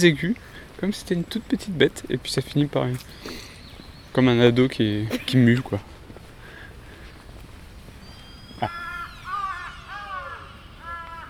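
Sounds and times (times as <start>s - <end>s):
speech: 0.0s - 3.5s, 4.2s - 5.9s, 8.6s - 8.8s
crow cawing: 8.2s - 11.2s.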